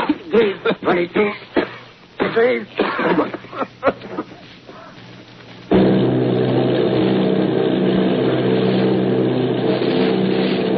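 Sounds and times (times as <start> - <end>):
speech: 0.3 - 1.5, 2.3 - 4.2
engines of an Army bombing plane and a group of bombers droning off Bayonne, New Jersey: 5.0 - 10.7.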